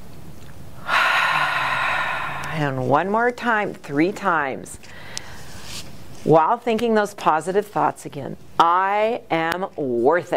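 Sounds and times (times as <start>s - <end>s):
deep breath drawn in during a hand exercise: 0.8s - 2.8s, 4.9s - 5.5s
speech: 2.6s - 5.1s, 6.2s - 10.3s.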